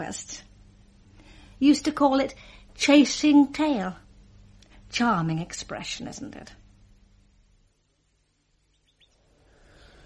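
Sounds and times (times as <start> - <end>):
speech: 0.0 - 0.5, 1.6 - 4.0, 4.9 - 6.6
low steady hum: 0.0 - 10.0
nightingale singing with quick rising whistles: 8.7 - 9.2.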